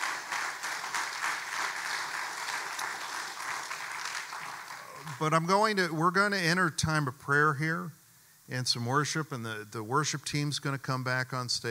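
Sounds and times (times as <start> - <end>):
church audience applauding panelists: 0.0 - 5.4
speech: 5.1 - 11.7.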